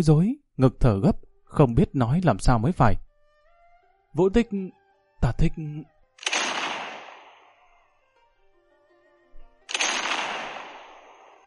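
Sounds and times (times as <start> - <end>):
speech: 0.0 - 3.0, 4.2 - 5.9
distant heavy cannon blasts with low rumble: 6.2 - 7.5, 9.7 - 11.4.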